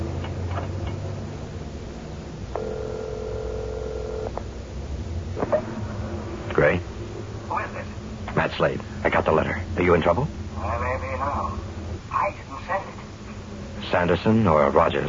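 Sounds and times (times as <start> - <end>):
low rumbling background: 0.0 - 15.0
telephone dial tone from a telephone booth at a highway gas station: 2.6 - 4.4
speech: 8.6 - 10.4, 13.9 - 15.0.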